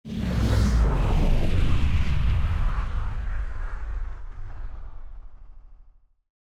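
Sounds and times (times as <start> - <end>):
Dodge car passing by: 0.1 - 3.2.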